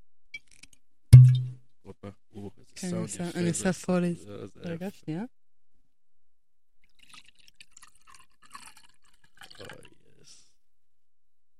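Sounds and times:
speech: 2.8 - 5.4
drink poured from a bottle into a glass: 6.9 - 10.0.

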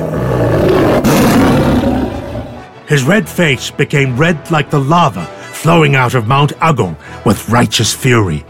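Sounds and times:
loud roar of a mythical lion-like beast: 0.0 - 2.7
speech: 2.9 - 8.4.

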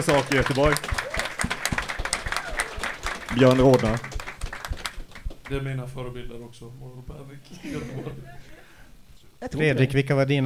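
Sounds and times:
speech: 0.0 - 1.0, 3.3 - 4.1, 5.5 - 8.6, 9.4 - 10.4
small crowd applauding: 0.0 - 6.0
laughter: 7.4 - 8.8.

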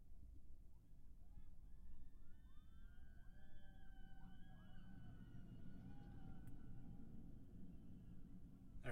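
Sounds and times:
steady low rumble: 0.1 - 8.9
riders screaming on a passing ride cart: 2.2 - 8.9.

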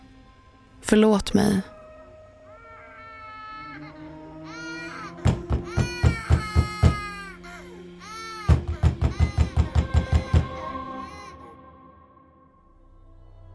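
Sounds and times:
speech: 0.9 - 1.7
baby crying: 2.5 - 11.9.

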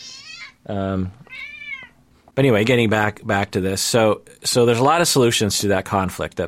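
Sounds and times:
female cat meowing and yowling: 0.0 - 0.6, 1.2 - 2.0
speech: 0.6 - 1.5, 2.4 - 6.4.

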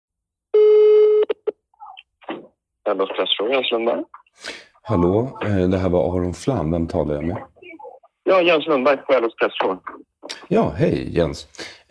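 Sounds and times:
steady electronic telephone tone: 0.6 - 1.4
speech: 2.9 - 7.5, 8.3 - 11.8.

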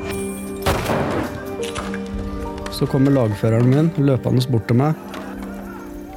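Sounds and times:
pistol shot with rumbling decay: 0.6 - 1.4
speech: 2.7 - 5.2.

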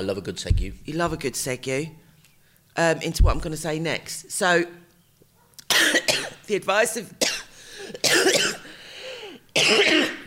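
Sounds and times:
speech: 0.0 - 2.0, 2.8 - 4.8, 6.5 - 7.2, 9.7 - 10.0
harsh cough: 5.7 - 6.4, 7.2 - 8.8, 9.6 - 10.2
breathy sounds: 7.5 - 8.0, 8.6 - 9.4.

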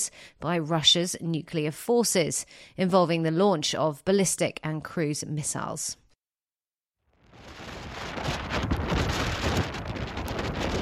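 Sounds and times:
speech: 0.0 - 6.0
strong winds of an Atlantic storm on England's southern coast: 7.2 - 10.8.

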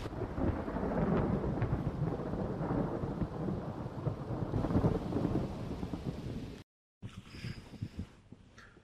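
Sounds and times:
heavy thunder rumbling during a storm: 0.0 - 6.6
rain hissing during a storm: 4.1 - 6.6.

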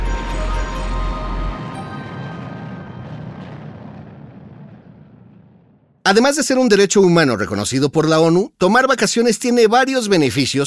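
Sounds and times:
jet airplane taking off: 0.0 - 5.4
speech: 6.1 - 10.6.

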